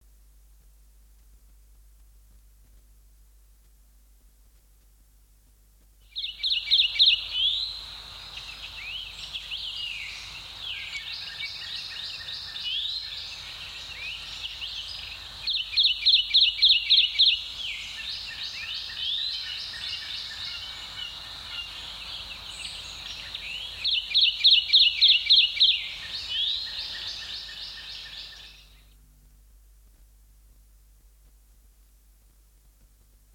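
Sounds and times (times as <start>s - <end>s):
Kentucky warbler singing: 6.1s - 28.9s.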